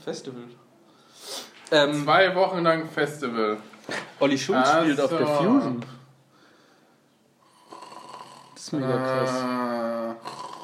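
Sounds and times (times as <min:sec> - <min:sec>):
speech: 0:00.0 - 0:00.7, 0:01.7 - 0:06.0, 0:08.7 - 0:10.3
person snoring while dozing off: 0:07.4 - 0:10.6.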